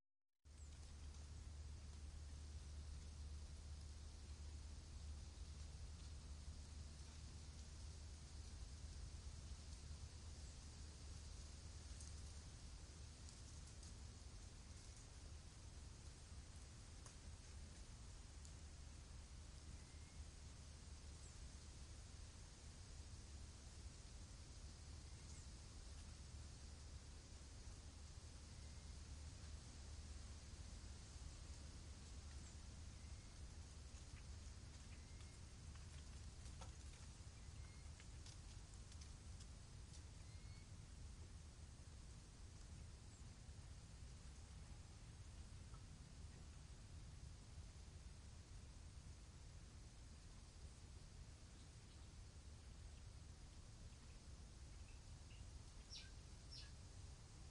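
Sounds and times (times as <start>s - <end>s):
wind in a forest: 0.4s - 57.5s
leaves rustling: 0.5s - 43.4s.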